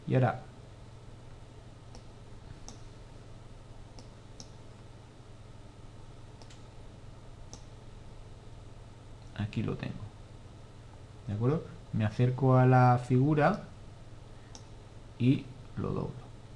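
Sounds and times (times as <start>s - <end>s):
speech: 0.1s - 0.5s, 9.4s - 10.1s, 11.3s - 13.7s, 15.2s - 16.2s
computer mouse clicks in a drawing program: 1.9s - 2.9s, 3.9s - 4.6s, 6.4s - 6.6s, 7.5s - 7.7s.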